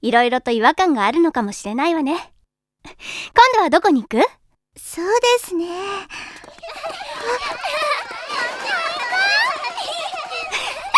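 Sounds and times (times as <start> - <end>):
speech: 0.0 - 7.9
several children shouting, squealing and laughing while playing: 6.4 - 10.9.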